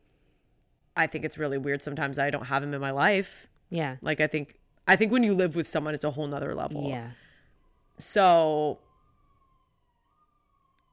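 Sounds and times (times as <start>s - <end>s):
speech: 1.0s - 7.2s, 8.0s - 8.9s
police siren wailing: 6.5s - 10.9s.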